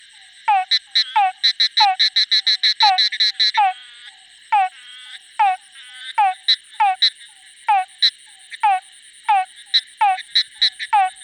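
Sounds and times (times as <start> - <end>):
Uperodon rohani frog: 0.0 - 11.2.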